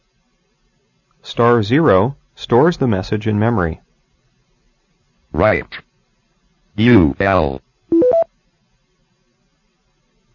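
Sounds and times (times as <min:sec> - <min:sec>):
speech: 0:01.2 - 0:03.8, 0:05.4 - 0:05.9, 0:06.8 - 0:07.6
touch-tone DTMF keypad dialing beeps: 0:07.9 - 0:08.3.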